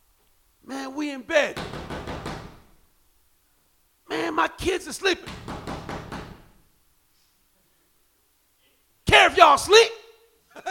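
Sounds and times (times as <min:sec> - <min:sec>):
speech: 0:01.1 - 0:01.7, 0:04.6 - 0:05.7, 0:09.6 - 0:09.9
knocking on a door: 0:01.6 - 0:02.7, 0:05.3 - 0:06.6.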